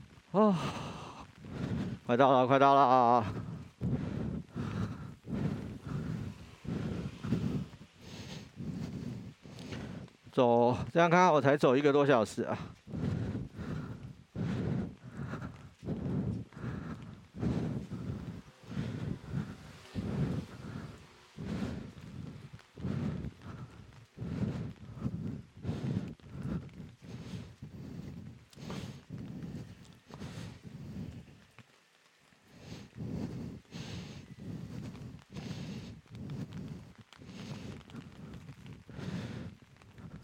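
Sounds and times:
rain pattering on an umbrella during a walk: 0:00.0 - 0:40.2
speech: 0:00.3 - 0:00.8, 0:02.1 - 0:03.5, 0:10.4 - 0:12.7.

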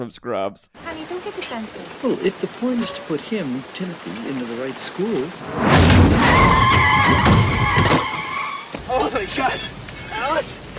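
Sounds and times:
speech: 0:00.0 - 0:08.2, 0:08.9 - 0:10.6
car tires screeching in a long skid: 0:05.6 - 0:08.7.

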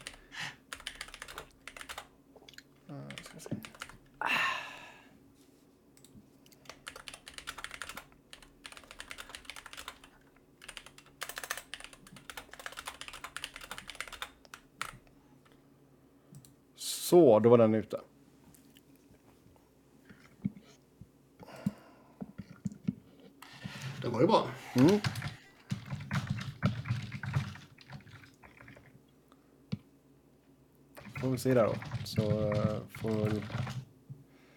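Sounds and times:
computer keyboard typing: 0:00.0 - 0:02.1, 0:03.1 - 0:04.0, 0:06.6 - 0:15.1, 0:24.8 - 0:28.8, 0:31.0 - 0:33.9
low steady hum: 0:00.0 - 0:34.5
speech: 0:17.1 - 0:18.1, 0:24.2 - 0:25.2, 0:31.4 - 0:33.8.

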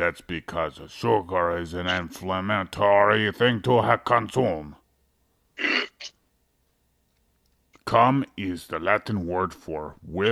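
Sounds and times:
speech: 0:00.0 - 0:04.8, 0:07.9 - 0:10.3
person sneezing: 0:05.6 - 0:06.1.

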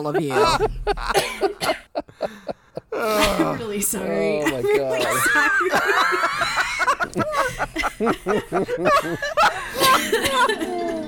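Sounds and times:
laughter: 0:00.0 - 0:11.0
speech: 0:00.0 - 0:11.0
person coughing after choking on water: 0:00.4 - 0:02.0, 0:03.0 - 0:03.7, 0:04.8 - 0:06.0, 0:09.8 - 0:11.0.

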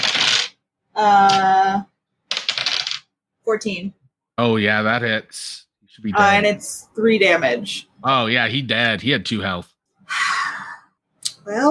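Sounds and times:
dice rattling across a hard tabletop: 0:00.0 - 0:00.6, 0:02.3 - 0:03.1
speech: 0:01.0 - 0:01.5, 0:03.5 - 0:10.4, 0:11.4 - 0:11.6.

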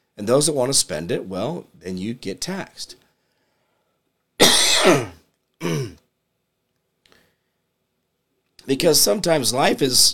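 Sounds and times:
speech: 0:00.2 - 0:03.0, 0:04.8 - 0:05.9, 0:08.7 - 0:10.1
person clearing their throat to ease a tickle: 0:04.4 - 0:06.1.

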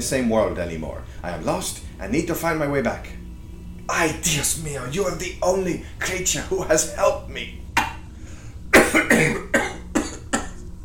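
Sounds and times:
speech: 0:00.0 - 0:03.2, 0:03.9 - 0:07.6
harsh coughing fit: 0:08.7 - 0:10.6.

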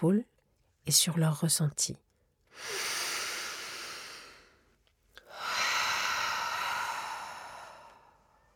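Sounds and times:
speech: 0:00.0 - 0:02.9
deep breathing during a guided relaxation exercise: 0:02.5 - 0:08.5.

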